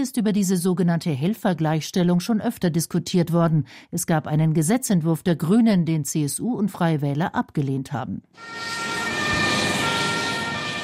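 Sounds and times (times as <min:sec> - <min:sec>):
speech: 0:00.0 - 0:09.1
Red Cross ambulance siren pulling away during a rescue exercise: 0:08.4 - 0:10.8.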